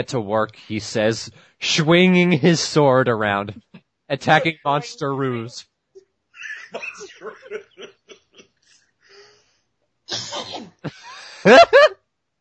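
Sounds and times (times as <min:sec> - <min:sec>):
speech: 0:00.0 - 0:05.7, 0:06.7 - 0:07.6, 0:10.1 - 0:12.0
person snickering: 0:06.4 - 0:08.4, 0:10.9 - 0:12.0
harsh coughing mixed with wheezing laughter: 0:06.5 - 0:08.4, 0:10.1 - 0:11.8.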